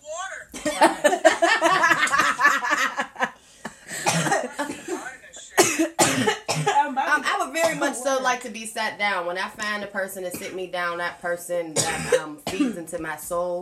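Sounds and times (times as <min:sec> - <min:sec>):
person coughing: 0:00.6 - 0:02.6, 0:03.8 - 0:06.9, 0:07.6 - 0:08.0, 0:11.8 - 0:12.8
laughter: 0:00.6 - 0:05.5
speech: 0:08.3 - 0:13.5.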